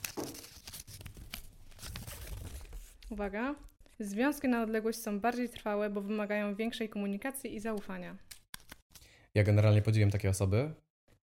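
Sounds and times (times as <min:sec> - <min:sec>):
small slip of paper crinkling as it is unfolded: 0:00.0 - 0:03.2
speech: 0:03.1 - 0:08.3, 0:09.3 - 0:10.8.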